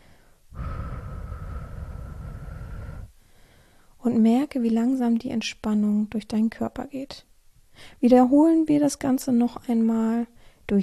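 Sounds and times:
slow controlled exhale through the mouth: 0:00.0 - 0:03.8
speech: 0:04.0 - 0:10.8.

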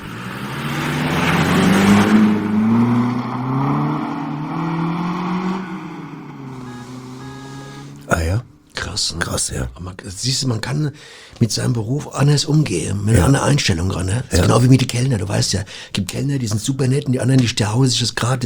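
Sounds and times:
mail carrier's car driving off with engine drone: 0:00.0 - 0:09.0
speech: 0:09.5 - 0:18.4.

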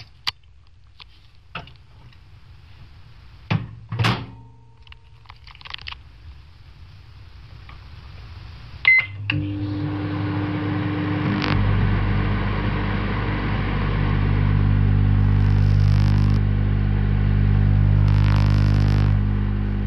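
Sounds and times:
microwave oven running with a steady low hum: 0:08.9 - 0:19.8.

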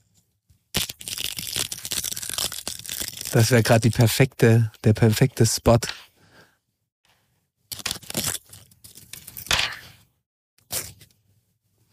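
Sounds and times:
crisp fortune cookie crackling and crunching in its wrapper: 0:00.8 - 0:04.2, 0:07.7 - 0:09.5
speech: 0:03.3 - 0:06.1.

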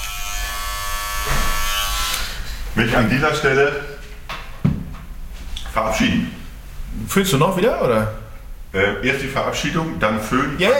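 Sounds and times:
electric shaver buzzing while shaving: 0:00.0 - 0:02.5
speech: 0:02.8 - 0:03.9, 0:05.8 - 0:06.4, 0:07.1 - 0:10.7.

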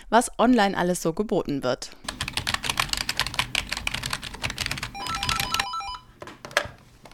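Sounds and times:
speech: 0:00.1 - 0:02.1
fast typing on a computer keyboard: 0:02.0 - 0:06.0
short electronic phone ring chirping: 0:04.9 - 0:06.2.

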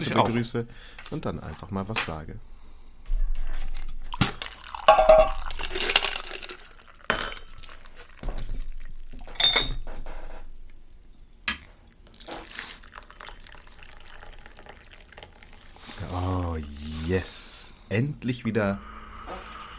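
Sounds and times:
speech: 0:00.0 - 0:02.5, 0:18.2 - 0:18.9
tea being poured into a cup: 0:03.6 - 0:17.7
ceramic clinks and clatter of dishware: 0:04.8 - 0:06.2, 0:07.1 - 0:07.8, 0:09.3 - 0:09.8.

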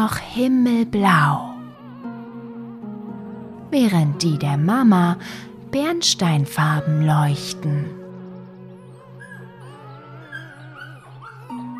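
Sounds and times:
speech: 0:00.0 - 0:01.5, 0:03.7 - 0:08.0
floppy-eared puppy whimpering and yelping for attention: 0:08.7 - 0:11.7.

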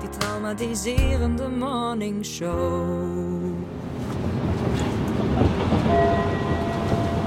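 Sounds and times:
speech: 0:00.5 - 0:03.8
subway train rumbling through a station: 0:03.7 - 0:07.2.

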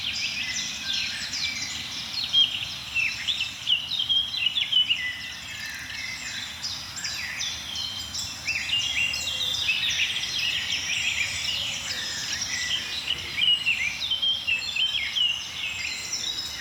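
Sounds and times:
blackcap warbler song: 0:00.0 - 0:16.6
dense bird chorus: 0:00.0 - 0:16.6.

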